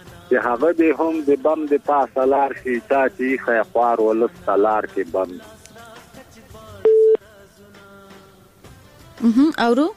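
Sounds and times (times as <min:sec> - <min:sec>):
speech: 0:00.3 - 0:05.6, 0:09.2 - 0:09.9
telephone busy tone after a call is cut off: 0:06.9 - 0:07.2.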